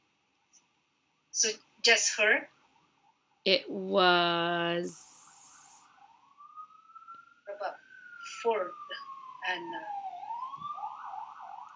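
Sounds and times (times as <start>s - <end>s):
speech: 1.4s - 2.5s, 3.4s - 5.1s, 8.4s - 8.8s, 9.5s - 10.0s
fire truck siren on the hills passing by: 6.0s - 11.7s.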